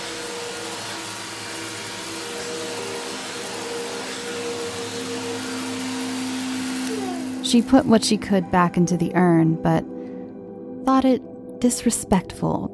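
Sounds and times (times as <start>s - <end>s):
vacuum cleaner droning with motor whine: 0.0s - 9.0s
speech: 7.5s - 9.9s, 11.0s - 12.7s.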